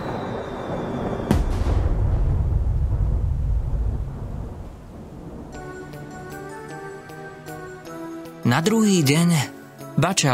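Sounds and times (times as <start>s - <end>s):
fireball crashing to the ground and exploding: 0.0s - 5.7s
speech: 8.5s - 10.3s.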